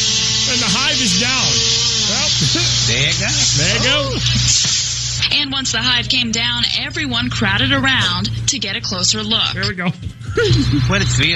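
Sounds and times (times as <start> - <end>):
aerosol insect spray hissing: 0.0 - 6.0
voices murmuring and talking: 0.3 - 11.3
laughter: 0.5 - 5.1, 9.5 - 11.3
speech: 2.5 - 4.7, 5.3 - 11.3.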